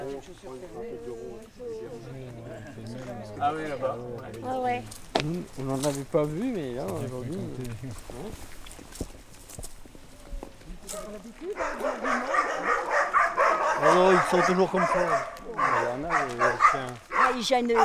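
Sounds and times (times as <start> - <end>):
speech: 0.2 - 9.2, 10.9 - 12.7, 13.8 - 17.8
several dogs barking in overlapping chorus: 11.5 - 17.8.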